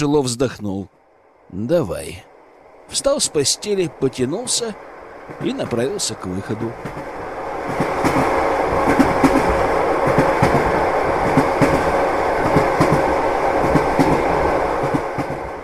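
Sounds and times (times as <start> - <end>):
speech: 0.0 - 2.3, 2.9 - 9.0
passenger train wheels clickety-clack on the rails: 5.2 - 15.6.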